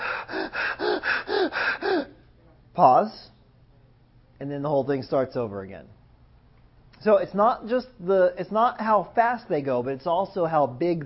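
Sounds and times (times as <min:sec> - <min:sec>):
quick gasping breaths in a breathing exercise: 0:00.0 - 0:02.3
speech: 0:02.8 - 0:03.3, 0:04.4 - 0:06.0, 0:07.0 - 0:11.0.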